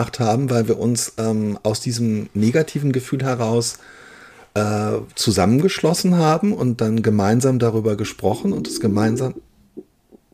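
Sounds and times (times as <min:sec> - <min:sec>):
speech: 0:00.0 - 0:09.9
stomach growling: 0:08.0 - 0:10.3.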